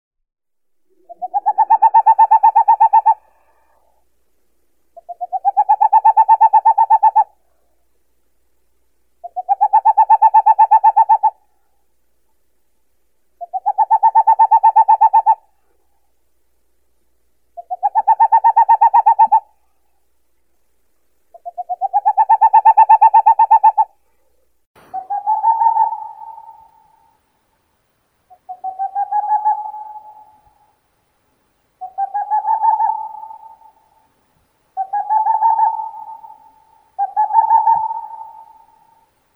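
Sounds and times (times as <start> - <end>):
Aegolius funereus owl calling: 0.9 - 4.0, 4.9 - 7.5, 9.2 - 11.8, 13.4 - 15.9, 17.5 - 20.0, 21.3 - 27.2, 28.3 - 30.8, 31.8 - 39.3.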